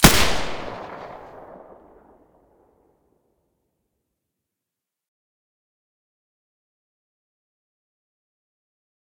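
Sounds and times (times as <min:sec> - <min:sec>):
G36 rifle with silencer firing: 0:00.0 - 0:02.1.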